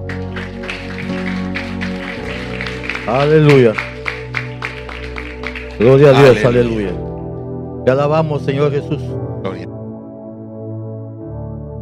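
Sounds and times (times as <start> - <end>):
church service audience clapping along in rhythm: 0.0 - 7.1
sustained music at a church service: 0.0 - 11.7
speech: 3.1 - 3.9, 5.8 - 7.1, 7.9 - 9.7.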